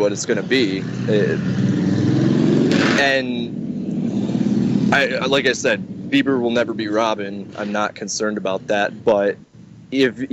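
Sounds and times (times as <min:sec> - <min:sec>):
speech: 0:00.0 - 0:01.8, 0:02.9 - 0:03.6, 0:04.9 - 0:10.3
steady road traffic rumbling outside: 0:00.0 - 0:10.3
vehicle engine droning: 0:00.0 - 0:10.3.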